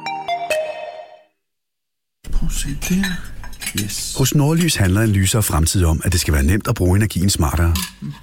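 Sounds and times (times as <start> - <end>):
speech: 2.5 - 8.2
dishes clinking while loading a dishwasher: 2.8 - 4.6, 7.6 - 8.2.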